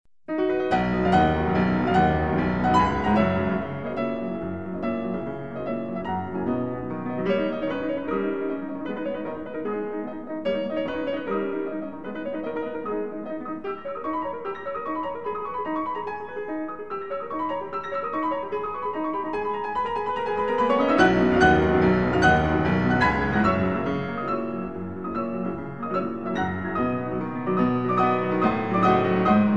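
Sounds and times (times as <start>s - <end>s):
piano duo playing: 0.3s - 29.5s.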